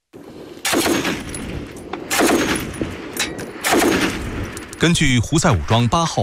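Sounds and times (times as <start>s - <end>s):
automatic gunfire from clash between Yemeni government and Houthi forces in Taiz province: 0.6s - 1.4s, 2.0s - 2.7s, 3.6s - 4.3s
speech: 4.8s - 6.2s.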